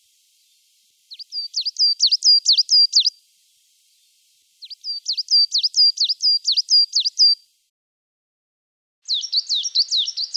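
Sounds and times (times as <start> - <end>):
coal tit singing repeated two-syllable notes: 0.2 - 3.1, 4.6 - 7.4, 9.1 - 10.3.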